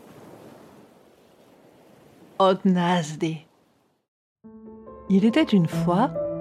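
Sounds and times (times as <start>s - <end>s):
ocean waves breaking: 0.0s - 2.8s
speech: 2.4s - 3.5s, 5.1s - 6.2s.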